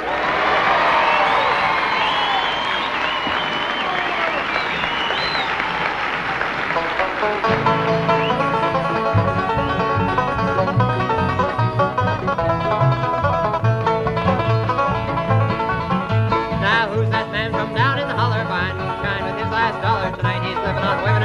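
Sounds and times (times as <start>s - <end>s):
scattered high shouts: 0.0s - 5.9s
crowd of about a thousand in a gym applauding, cheering and whooping: 0.0s - 12.8s
string band playing: 3.1s - 21.2s.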